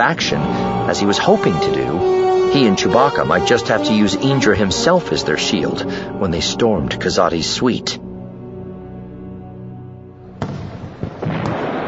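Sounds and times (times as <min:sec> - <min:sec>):
speech: 0:00.0 - 0:08.0
humming drone: 0:00.0 - 0:11.0
massive fireworks display with crackling explosions: 0:10.4 - 0:11.8.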